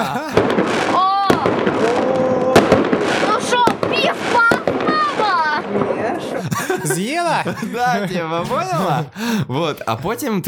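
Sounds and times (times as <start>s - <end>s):
laughter: 0.0s - 0.6s, 6.0s - 10.0s
firework bangs: 0.0s - 7.4s
whistling firework rockets rising: 0.3s - 6.0s
speech: 7.5s - 10.4s.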